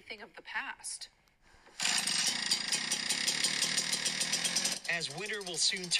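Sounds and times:
speech: 0.1 - 1.2, 4.9 - 5.9
gas-powered leaf blower running: 1.8 - 5.9.

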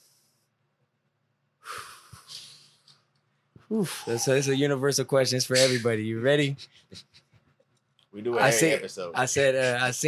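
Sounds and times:
deep breath drawn in: 1.6 - 2.8
speech: 3.7 - 7.2, 8.2 - 10.0.

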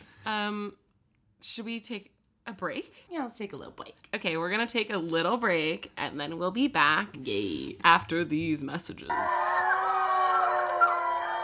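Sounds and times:
speech: 0.2 - 0.8, 1.4 - 9.8
wolf pack howling in chorus: 9.1 - 11.4.

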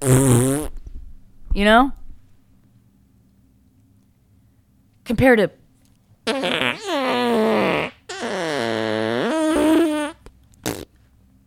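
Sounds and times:
voice imitating a fart with buzzy raspberries: 0.0 - 0.8, 6.2 - 11.0
speech: 1.6 - 2.0, 5.1 - 5.6.

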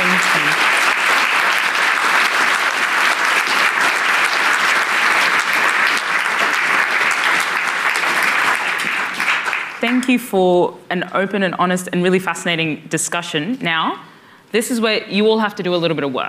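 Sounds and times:
large audience applauding a discussion panel: 0.0 - 10.1
speech: 9.9 - 16.2.

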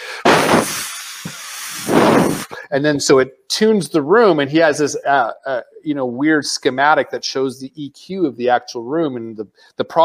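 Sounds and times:
voice imitating white noise hiss: 0.0 - 2.6
speech: 2.7 - 10.0.

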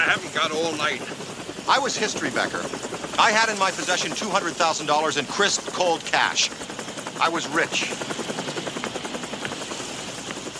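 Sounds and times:
helicopter rotor blades beating while hovering: 0.0 - 10.5
speech: 0.1 - 6.6, 7.2 - 8.2.

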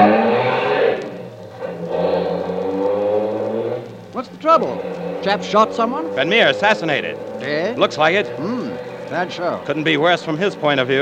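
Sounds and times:
car engine accelerating in a chase: 0.0 - 11.0
speech: 4.5 - 11.0.

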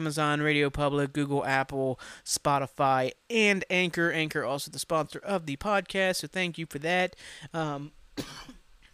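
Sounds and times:
speech: 0.0 - 8.6
sharp cough with a breathy tail: 8.2 - 8.6
voiced throat-clearing hum: 8.2 - 8.6.

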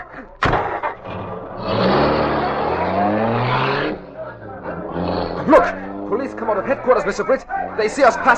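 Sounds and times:
speech: 0.1 - 0.4, 6.5 - 8.3
car engine revving and accelerating: 0.4 - 8.3.

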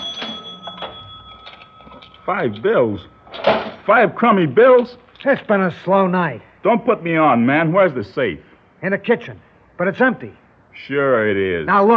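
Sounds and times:
cash register being opened: 0.0 - 3.9
faint steady electrical hum: 0.0 - 11.9
speech: 2.3 - 11.9.

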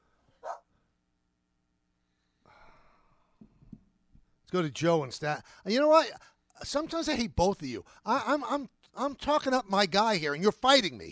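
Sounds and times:
small unhappy dog giving a sharp yip: 0.4 - 0.6
speech: 4.5 - 11.1.

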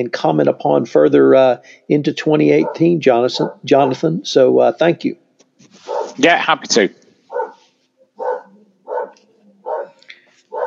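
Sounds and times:
speech: 0.0 - 5.2, 6.2 - 7.0
dog barking at garbage men outside: 2.6 - 3.7, 5.9 - 6.2, 7.3 - 10.6.

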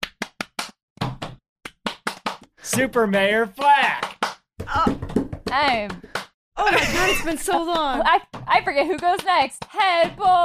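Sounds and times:
rhythmic hand clapping: 0.0 - 0.8, 1.7 - 4.4, 7.5 - 10.4
speech: 2.7 - 4.0, 4.7 - 10.4
laughter: 6.6 - 8.1.

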